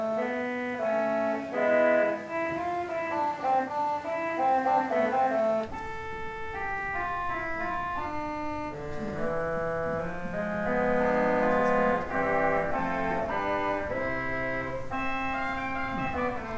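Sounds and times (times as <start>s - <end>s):
vox humana organ stop: 0.2s - 16.5s.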